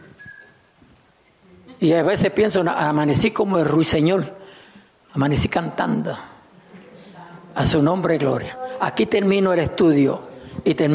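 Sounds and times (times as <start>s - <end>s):
person whistling a single short steady note: 0.0s - 0.6s
speech: 1.8s - 4.6s, 5.2s - 6.3s, 7.6s - 10.9s.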